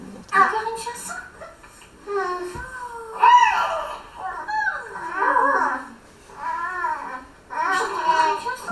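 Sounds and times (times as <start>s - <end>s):
three-month-old baby babbling and cooing: 2.1s - 8.6s.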